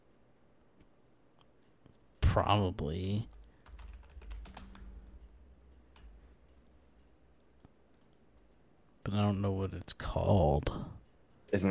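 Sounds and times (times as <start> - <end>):
speech: 2.3 - 3.4, 9.0 - 10.9
typing on a computer keyboard: 3.3 - 6.2, 7.9 - 8.3.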